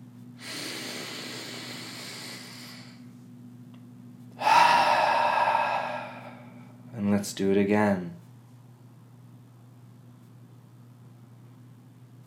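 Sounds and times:
faint steady low hum: 0:00.0 - 0:12.2
deep breath into the belly, exhaled through the nose: 0:00.4 - 0:03.1, 0:04.4 - 0:06.8
speech: 0:07.2 - 0:08.2.

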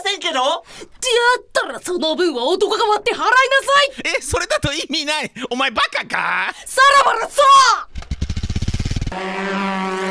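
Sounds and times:
speech: 0:00.2 - 0:08.0, 0:09.1 - 0:10.0
motorcycle engine chugging while riding away: 0:08.0 - 0:09.1.

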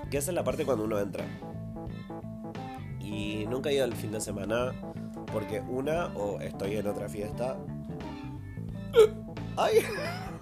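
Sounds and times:
speech: 0:00.1 - 0:01.5, 0:03.1 - 0:07.7, 0:08.9 - 0:10.3
person hiccuping: 0:08.9 - 0:09.3.

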